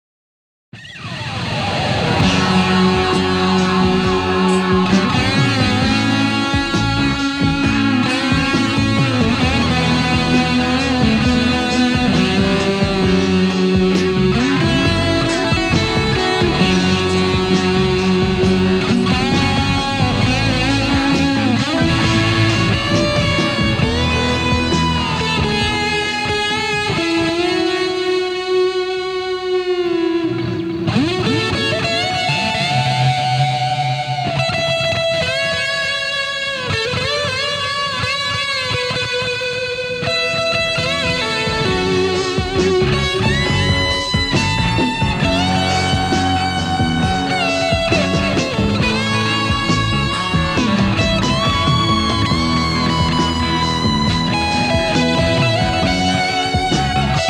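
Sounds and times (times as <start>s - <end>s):
guitar solo through tube driver overdrive: 0.8s - 57.2s.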